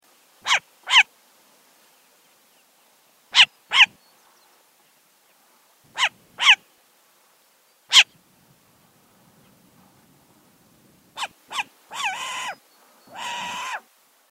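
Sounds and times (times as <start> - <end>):
Short-eared Owl giving sharp barking calls: 0.4 - 1.1, 3.3 - 4.0, 5.9 - 6.6, 7.9 - 8.2, 11.2 - 13.9.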